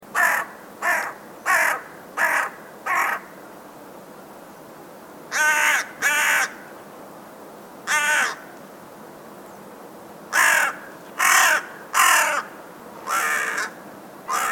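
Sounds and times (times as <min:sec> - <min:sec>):
crow: 0:00.2 - 0:03.3, 0:05.3 - 0:06.6, 0:07.9 - 0:08.5, 0:10.4 - 0:14.5.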